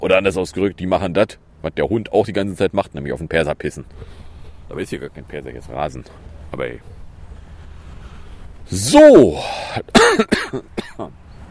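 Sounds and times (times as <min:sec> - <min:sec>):
speech: 0:00.0 - 0:07.0, 0:08.7 - 0:11.2
dry coughing: 0:09.4 - 0:11.1
throat clearing: 0:09.9 - 0:11.1.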